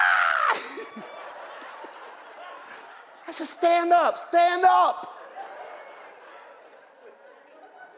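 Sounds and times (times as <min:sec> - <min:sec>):
voice imitating a woman panicking in a pool: 0:00.0 - 0:00.8
laughter: 0:00.3 - 0:07.9
speech: 0:00.5 - 0:01.1, 0:03.4 - 0:05.2.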